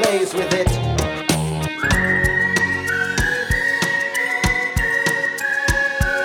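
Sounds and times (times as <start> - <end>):
bouncy musical backing: 0.0 - 6.2
speech: 0.1 - 1.0
whistled melody: 1.7 - 6.2.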